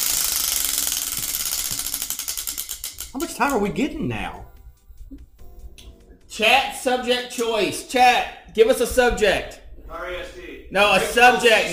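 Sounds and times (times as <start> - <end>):
spinning wheel ratchet clicks: 0.0 - 3.7
speech: 3.1 - 4.5, 6.4 - 11.7.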